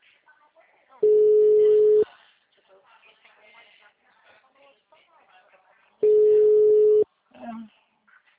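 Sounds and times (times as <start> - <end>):
telephone ringback tone: 1.0 - 2.0, 6.0 - 7.0.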